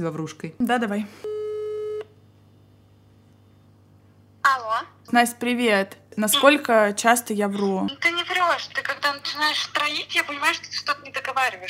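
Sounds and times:
speech: 0.0 - 1.3, 4.8 - 11.6
faint hum: 0.0 - 11.6
electronic telephone tone beep while calling a friend: 1.3 - 2.1.

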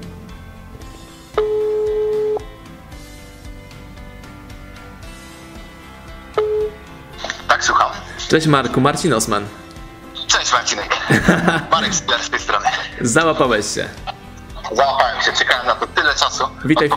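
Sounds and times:
telephone ringback tone after dialing a phone number: 1.3 - 2.5, 6.3 - 6.9
speech: 8.3 - 9.7, 10.5 - 14.1, 14.7 - 16.9
laughter: 10.9 - 13.2.

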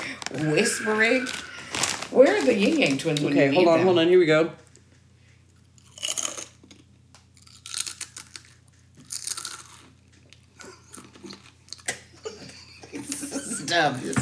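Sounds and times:
potato chips being chewed: 0.0 - 3.2, 5.5 - 12.0
speech: 0.3 - 4.6
laughter: 12.1 - 14.1.

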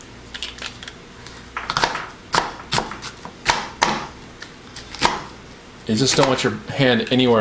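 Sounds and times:
blade chopping through a very large onion: 1.7 - 4.2, 4.8 - 6.5
speech: 5.9 - 7.3.

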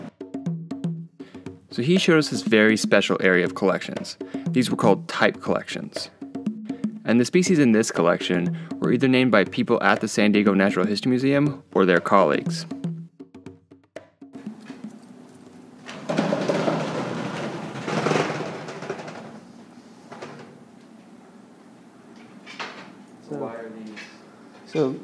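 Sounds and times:
speech: 1.8 - 6.2, 7.1 - 12.8
roll-up door of a locked cabinet rumbling and rattling open: 16.1 - 19.4.

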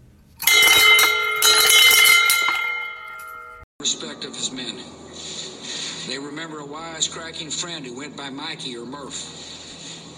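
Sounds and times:
bell ringing: 0.4 - 3.6
speech: 6.5 - 9.4.

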